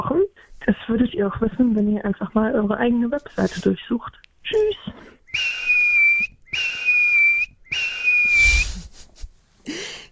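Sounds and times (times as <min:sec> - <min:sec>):
speech: 0:00.7 - 0:04.8
soft airy human whistled notes: 0:05.3 - 0:08.9.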